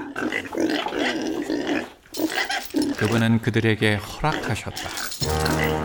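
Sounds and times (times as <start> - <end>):
herd of pigs grunting and snorting: 0.0 - 2.0
speech: 3.0 - 5.7.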